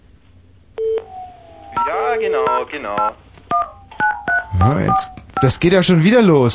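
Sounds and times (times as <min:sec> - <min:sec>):
low hum: 0:00.0 - 0:06.5
telephone keypad beep: 0:00.8 - 0:01.1, 0:01.8 - 0:05.6
speech: 0:01.8 - 0:03.2, 0:04.6 - 0:06.5.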